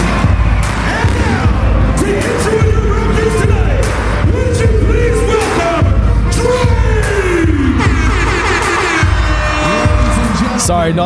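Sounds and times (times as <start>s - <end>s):
crowd roaring and cheering at a basketball playoff game: 0.0s - 11.0s
fireworks bangs inside a large basketball arena: 0.6s - 1.8s
speech: 10.9s - 11.0s.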